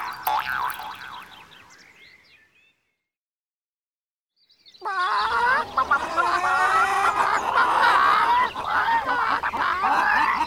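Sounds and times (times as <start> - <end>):
flock of chickens clucking and squawking: 4.8 - 10.4.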